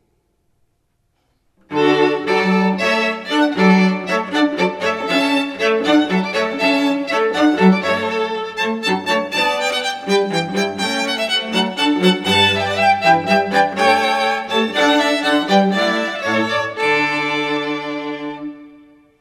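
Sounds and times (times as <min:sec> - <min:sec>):
strings playing a hornpipe: 0:01.7 - 0:18.9.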